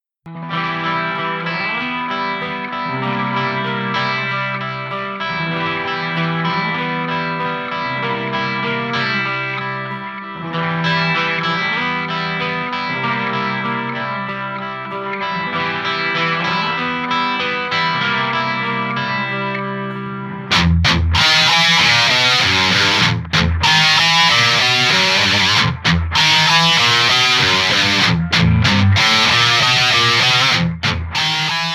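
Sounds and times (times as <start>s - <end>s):
lead guitar: 0.0s - 31.7s.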